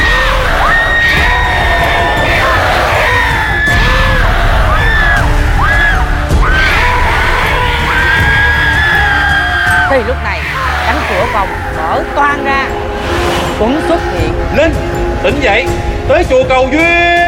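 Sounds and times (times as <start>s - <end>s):
horned red-eyed demon screaming fiercely: 0.0s - 12.6s
rough dense roar: 0.0s - 15.1s
speech: 16.1s - 17.0s.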